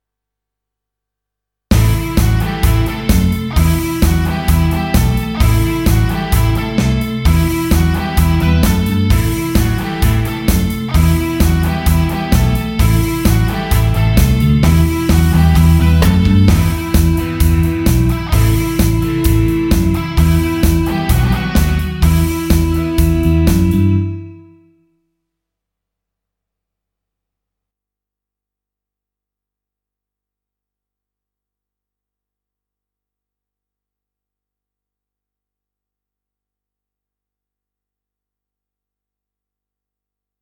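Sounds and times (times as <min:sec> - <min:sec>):
rock guitar riff in E minor: 0:01.7 - 0:24.6.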